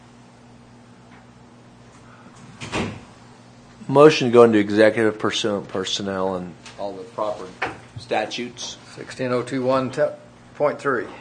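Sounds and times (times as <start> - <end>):
faint hum: 0.0 - 11.1
door swinging shut: 2.6 - 3.1
speech: 3.9 - 11.1.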